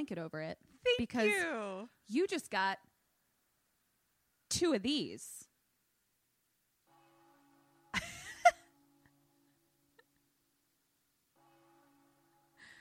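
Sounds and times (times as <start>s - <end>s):
speech: 0.0s - 2.9s, 4.5s - 5.5s
faint church bells ringing: 6.8s - 10.0s, 11.3s - 12.7s.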